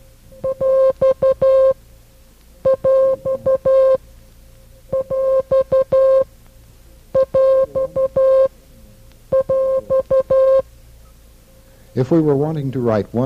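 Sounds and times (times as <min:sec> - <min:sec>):
coded mid-pitched beeping signal for a mixed number separator: 0:00.4 - 0:01.8, 0:02.6 - 0:04.0, 0:04.9 - 0:06.3, 0:07.2 - 0:08.5, 0:09.3 - 0:10.7
speech: 0:12.0 - 0:13.2.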